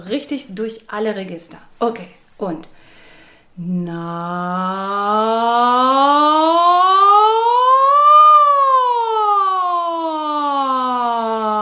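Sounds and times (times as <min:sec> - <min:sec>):
speech: 0:00.1 - 0:03.0, 0:03.6 - 0:06.8
voice singing ja imitating a siren in a vocal exercise: 0:03.6 - 0:11.6.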